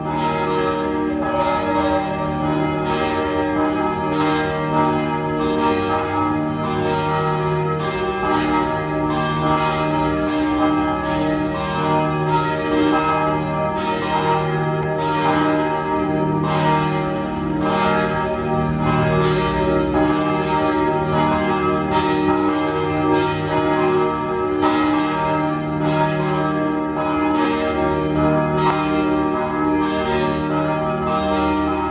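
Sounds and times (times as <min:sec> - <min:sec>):
church bells pealing: 0:00.0 - 0:31.8.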